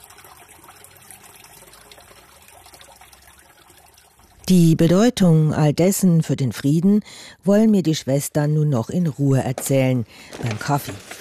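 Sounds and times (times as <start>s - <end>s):
water trickling in a fountain in the Ranft: 0.0s - 5.7s
speech: 4.5s - 11.1s.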